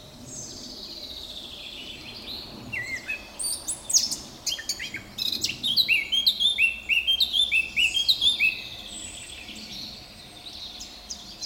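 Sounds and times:
Eurasian blackcap Sylvia atricapilla singing: 0:02.3 - 0:11.4.

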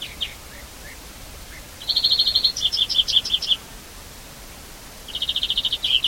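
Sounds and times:
European greenfinch Chloris chloris trills and sharp chirps: 0:00.0 - 0:03.6, 0:05.1 - 0:06.0.

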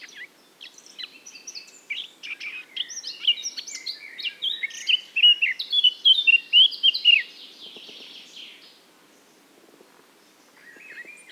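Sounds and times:
Eurasian blackcap Sylvia atricapilla song: 0:00.0 - 0:08.8
faint background noise: 0:00.0 - 0:11.3.

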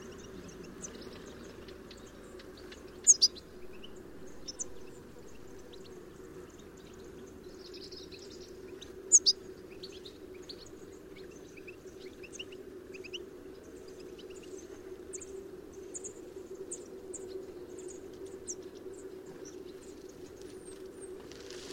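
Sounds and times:
low background hum: 0:00.0 - 0:21.7
European goldfinch Carduelis carduelis giving high thin twittering call notes: 0:00.1 - 0:05.9, 0:07.7 - 0:10.6.

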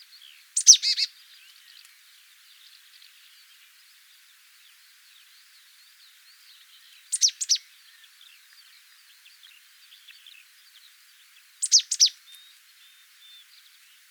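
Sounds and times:
marsh tit Poecile palustris giving sharp high notes: 0:00.6 - 0:01.1, 0:07.1 - 0:07.6, 0:11.6 - 0:12.6.

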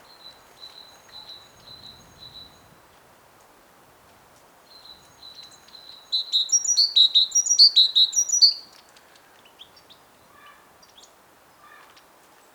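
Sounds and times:
great tit Parus major calling: 0:06.1 - 0:08.6.

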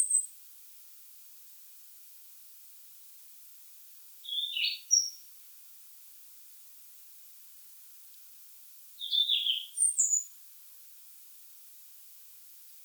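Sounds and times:
faint steady hiss: 0:00.0 - 0:12.8
European robin Erithacus rubecula singing warbled phrases: 0:04.2 - 0:05.2, 0:09.0 - 0:10.3.

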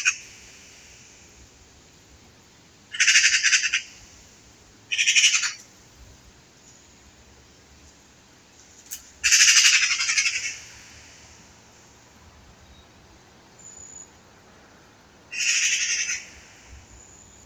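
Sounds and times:
Eurasian magpie Pica pica giving harsh rattling chatter calls: 0:02.9 - 0:03.9, 0:04.9 - 0:05.6, 0:09.2 - 0:10.8, 0:15.3 - 0:16.4.

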